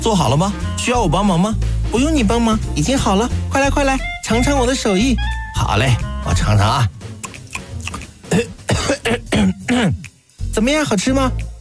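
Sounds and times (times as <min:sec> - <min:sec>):
speech: 0:00.0 - 0:07.0, 0:08.4 - 0:10.0, 0:10.6 - 0:11.5
person coughing after tasting food: 0:08.3 - 0:10.0
throat clearing: 0:08.3 - 0:10.0.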